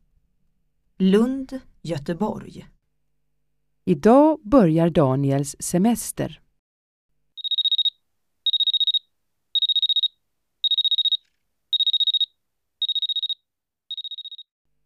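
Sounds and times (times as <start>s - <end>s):
speech: 1.0s - 2.8s, 3.9s - 6.4s
alarm clock ringing with high electronic beeping tone: 7.4s - 9.0s, 9.6s - 14.5s.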